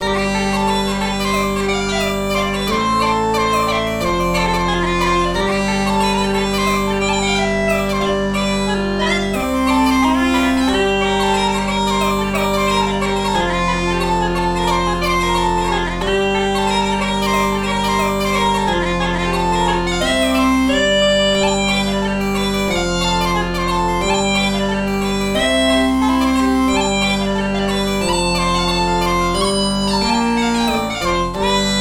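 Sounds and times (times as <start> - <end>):
bagpipes: 0.0 - 31.7.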